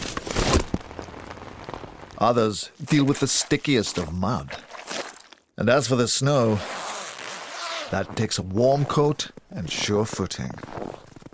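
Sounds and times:
rain pattering onto a hard surface: 0.9s - 2.4s
speech: 2.2s - 5.0s, 5.6s - 6.8s, 7.9s - 11.1s.

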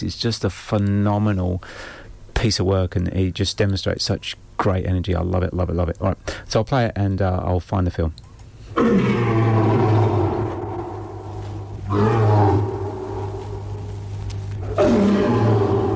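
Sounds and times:
speech: 0.0s - 8.2s, 8.8s - 9.4s
lion roaring: 8.8s - 15.9s.

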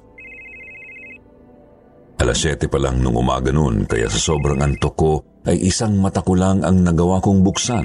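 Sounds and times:
cellphone ringing with a single steady electronic tone: 0.0s - 1.4s, 4.1s - 5.0s, 7.4s - 7.8s
speech: 2.2s - 7.8s.

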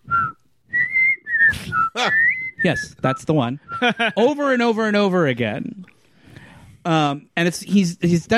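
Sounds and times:
parrot whistling a TV theme tune at sundown: 0.0s - 3.9s
speech: 2.0s - 5.9s, 6.8s - 8.3s.

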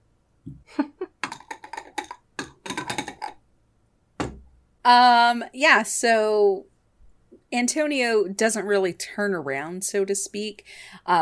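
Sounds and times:
plastic dice clattering across a hard surface: 1.2s - 3.4s
speech: 4.8s - 6.7s, 7.5s - 11.2s.

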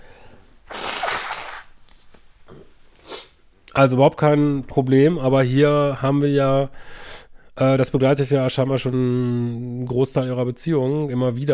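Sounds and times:
person blowing nose: 0.7s - 2.1s, 3.0s - 3.4s
speech: 3.8s - 7.0s, 7.6s - 11.5s.

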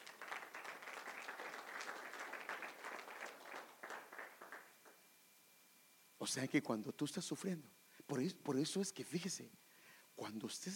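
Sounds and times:
audience applauding: 0.0s - 5.0s
speech: 6.2s - 9.6s, 10.2s - 10.7s.

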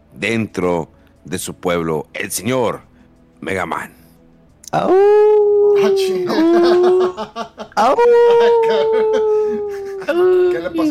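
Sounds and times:
speech: 0.2s - 4.0s, 4.7s - 10.8s
several voices howling together in long wavering tones: 4.8s - 10.8s
people laughing: 5.8s - 10.8s.

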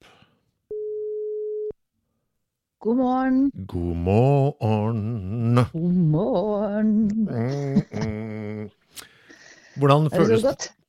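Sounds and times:
telephone ringing tone while placing a call: 0.7s - 1.7s
speech: 2.8s - 8.8s, 9.8s - 10.8s.

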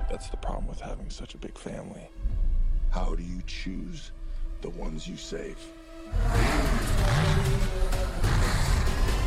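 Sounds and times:
speech: 0.1s - 2.4s, 2.9s - 8.4s
racing car engines revving: 6.1s - 9.1s.

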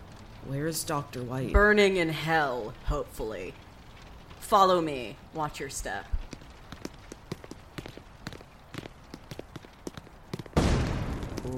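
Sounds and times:
speech: 0.4s - 3.7s, 4.5s - 6.2s
sharp evenly spaced footsteps tapping: 6.1s - 10.6s.

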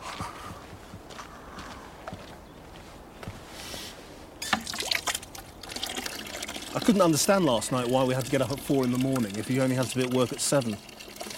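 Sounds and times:
water poured into a container to be warmed up: 4.4s - 11.3s
speech: 6.8s - 10.9s.

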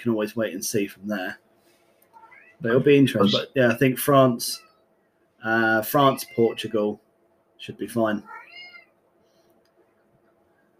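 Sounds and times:
speech: 0.0s - 1.4s, 2.6s - 4.7s, 5.4s - 7.0s, 7.6s - 8.4s
low room hum: 0.0s - 10.7s
cat meowing faintly: 2.2s - 2.6s, 3.2s - 3.6s, 5.9s - 6.7s, 8.2s - 9.0s.

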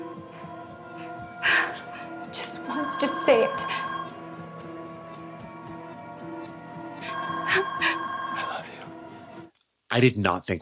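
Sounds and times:
telephone ringing with a trilling electronic tone: 2.4s - 4.4s, 7.0s - 9.0s
speech: 3.0s - 3.8s, 10.0s - 10.6s.

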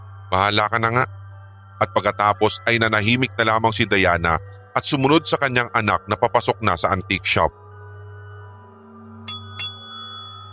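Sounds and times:
speech: 0.3s - 1.2s, 1.8s - 7.6s
service call bell struck in an antique shop: 9.3s - 10.5s.

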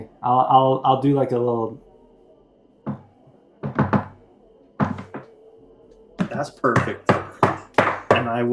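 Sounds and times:
speech: 0.2s - 1.8s, 6.4s - 7.4s, 8.2s - 8.5s
rhythmic knocking on a door or hard surface: 2.8s - 4.2s, 4.8s - 5.3s, 6.2s - 8.5s.

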